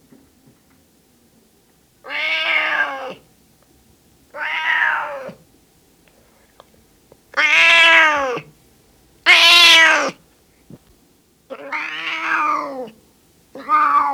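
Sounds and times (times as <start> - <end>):
male cat meowing: 2.1 - 3.2, 4.4 - 5.4, 7.4 - 8.5, 9.3 - 10.2, 11.5 - 13.0, 13.6 - 14.1.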